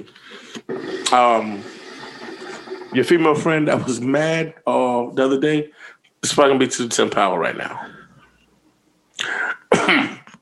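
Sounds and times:
speech: 0:00.0 - 0:01.8, 0:02.9 - 0:07.9
person coughing: 0:09.2 - 0:10.4.

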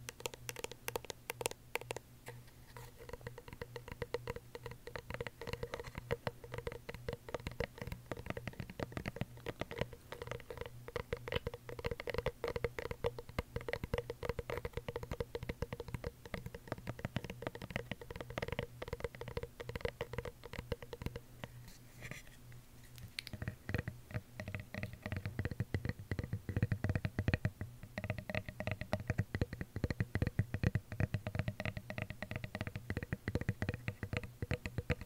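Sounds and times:
fast dense ASMR tapping: 0:00.0 - 0:22.2, 0:23.2 - 0:35.0
light ASMR scratching: 0:01.8 - 0:11.7, 0:20.9 - 0:25.4.

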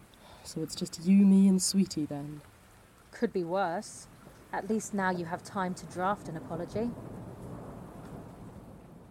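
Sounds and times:
heavy rain pouring in a thunderstorm: 0:00.0 - 0:09.1
speech: 0:00.4 - 0:02.5, 0:03.2 - 0:07.1
deep rolling rumble of thunder: 0:04.5 - 0:09.1.

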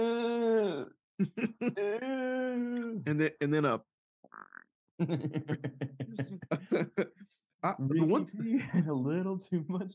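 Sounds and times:
man's voice imitating a groan: 0:00.0 - 0:03.0
speech: 0:01.2 - 0:09.9
laughter: 0:05.0 - 0:07.2.

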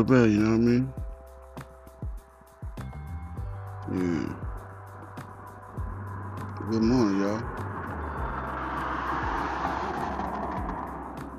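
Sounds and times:
speech: 0:00.0 - 0:01.0, 0:03.9 - 0:04.4, 0:06.6 - 0:07.7
vehicles passing with deep rumbling: 0:03.0 - 0:11.3
road traffic with tire and engine noise: 0:03.8 - 0:11.3.

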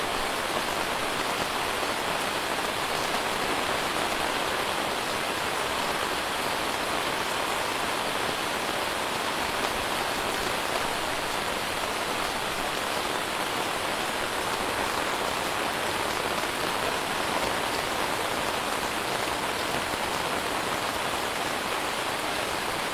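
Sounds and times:
torrential rain on a zinc roof: 0:00.0 - 0:22.9.

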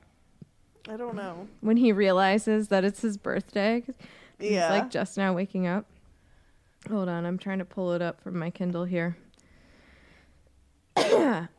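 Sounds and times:
speech: 0:00.9 - 0:05.9, 0:06.8 - 0:09.2
person coughing: 0:11.0 - 0:11.5.

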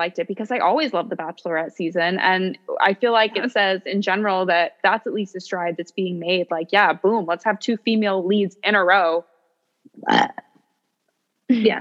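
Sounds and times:
speech: 0:00.0 - 0:09.3, 0:10.0 - 0:10.4, 0:11.5 - 0:11.7
loud guttural burp: 0:10.0 - 0:10.5.

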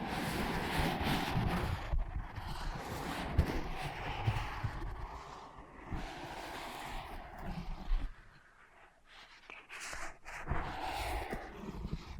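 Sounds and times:
scratching and rubbing on soft ear pads: 0:00.2 - 0:12.1.

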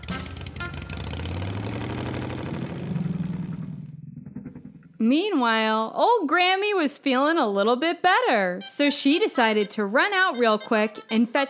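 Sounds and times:
small scooter engine revving and driving off: 0:00.0 - 0:04.8
speech: 0:05.0 - 0:11.4.

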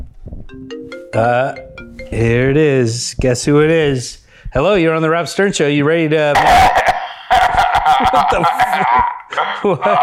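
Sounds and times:
electronic phone ringtone for an incoming call: 0:00.5 - 0:02.6
speech: 0:00.5 - 0:06.9, 0:08.0 - 0:10.0
laughter: 0:06.4 - 0:10.0.

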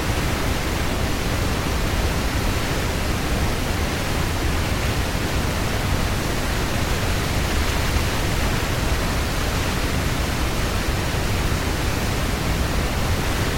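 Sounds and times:
waterfall roaring: 0:00.0 - 0:13.5.

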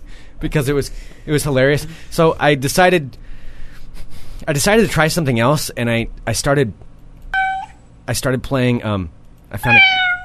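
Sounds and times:
speech: 0:00.4 - 0:03.3, 0:04.4 - 0:06.8, 0:08.1 - 0:10.0
cat meows played from a computer soundboard: 0:07.4 - 0:07.8, 0:09.6 - 0:10.2.

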